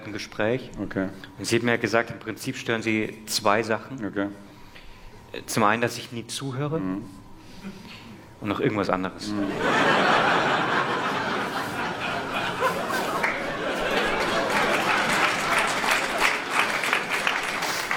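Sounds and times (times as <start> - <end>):
speech: 0.1 - 4.5, 5.3 - 10.2
people chuckling: 9.4 - 17.9
audience applause: 10.0 - 17.9.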